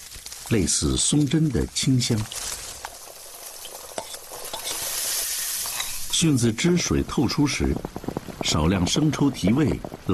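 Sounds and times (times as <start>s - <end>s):
dried chillies and tender ginger slices stir-fried in a pan over a chestnut-shell fire: 0.0s - 9.7s
speech: 0.5s - 2.6s, 6.2s - 10.1s
stirring scrapes in pan: 2.3s - 6.1s.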